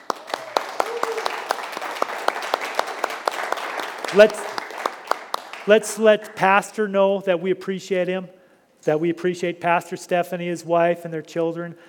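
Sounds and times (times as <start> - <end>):
crowd applauding with rhythmic clapping: 0.0 - 5.8
person whooping: 0.1 - 1.5
speech: 4.1 - 4.5, 5.6 - 11.8.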